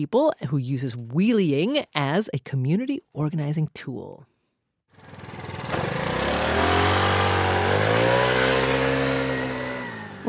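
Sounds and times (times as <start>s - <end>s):
speech: 0.0s - 4.3s
small moped engine revving: 4.9s - 10.2s.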